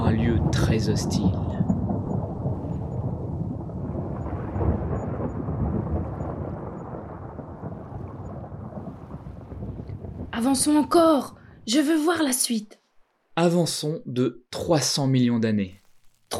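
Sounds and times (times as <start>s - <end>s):
deep rolling thunder: 0.0s - 11.7s
heavy rain downpour: 0.0s - 11.7s
speech: 0.7s - 1.7s, 10.4s - 12.8s, 13.4s - 16.3s.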